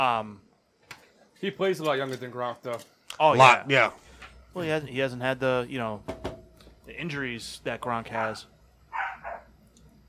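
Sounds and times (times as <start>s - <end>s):
speech: 0.0s - 0.5s, 1.4s - 6.2s, 6.9s - 8.5s
dog barking: 8.1s - 9.5s.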